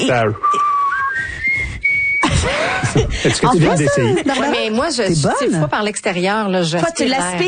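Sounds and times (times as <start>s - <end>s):
speech: 0.0s - 0.7s, 2.4s - 7.4s
person whistling weakly: 0.3s - 2.5s
laughter: 2.2s - 4.9s.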